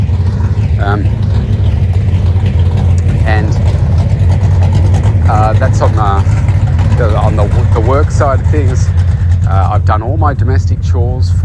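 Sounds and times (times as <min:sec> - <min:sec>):
car engine running in a shed: 0:00.0 - 0:11.4
voice fragments: 0:00.1 - 0:01.3, 0:05.3 - 0:11.4
speech: 0:08.2 - 0:09.0, 0:09.7 - 0:11.4.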